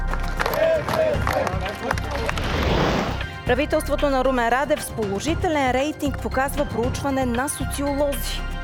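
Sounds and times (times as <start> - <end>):
crowd of party supporters applauding at the Interior Ministry: 0.1 - 3.1
cheering: 0.4 - 1.9
speech: 3.5 - 8.6.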